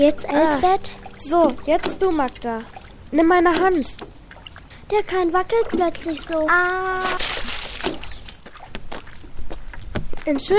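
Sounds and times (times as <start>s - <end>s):
speech: 0.0s - 4.1s, 4.9s - 8.0s, 10.3s - 10.5s
water sloshing and churning: 0.0s - 9.7s
person falling into water with a heavy splash: 7.0s - 8.4s.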